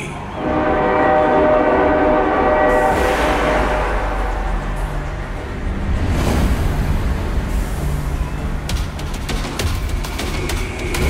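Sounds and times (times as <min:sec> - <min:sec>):
train rolling by with heavy rumble and rhythmic clatter: 0:00.0 - 0:11.0
train horn blaring: 0:00.3 - 0:05.3.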